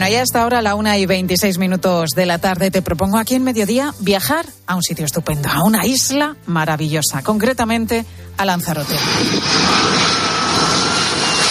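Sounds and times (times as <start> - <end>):
speech: 0.0 - 10.2
airplane jet engine roaring: 8.8 - 11.4.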